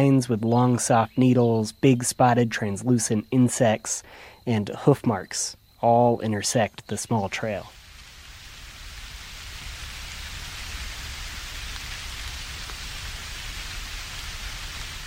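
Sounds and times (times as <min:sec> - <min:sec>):
speech: 0:00.0 - 0:07.8
heavy rain pouring on a mountain trail in the Sierra Norte, Mexico: 0:07.3 - 0:15.0.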